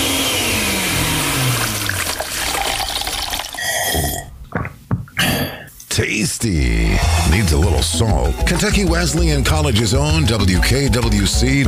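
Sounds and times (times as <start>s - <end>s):
blender whirring: 0.0s - 4.0s
liquid sloshing and gurgling in a blender: 1.8s - 4.3s
speech: 6.0s - 11.6s.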